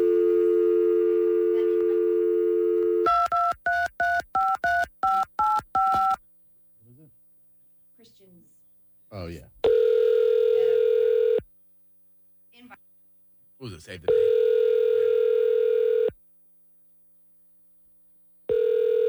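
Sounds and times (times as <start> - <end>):
telephone dial tone: 0.0 - 6.2, 9.7 - 11.4, 14.1 - 16.2, 18.5 - 19.0
telephone touch-tone beeps: 3.1 - 6.2
speech: 13.9 - 14.2.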